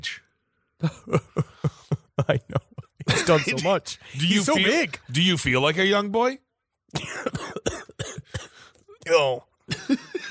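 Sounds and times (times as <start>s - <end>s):
speech: 0.0s - 0.2s, 0.8s - 1.4s, 3.3s - 6.4s, 9.1s - 10.0s
person coughing: 3.1s - 3.7s, 6.9s - 8.7s.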